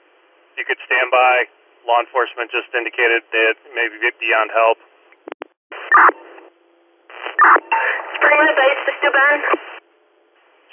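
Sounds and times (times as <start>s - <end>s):
faint low hum: 0.0s - 10.7s
speech: 0.6s - 4.9s, 8.9s - 9.6s
radio static: 4.3s - 6.5s, 7.1s - 9.8s
emergency radio dispatch alert tones: 5.7s - 6.4s, 7.1s - 9.8s.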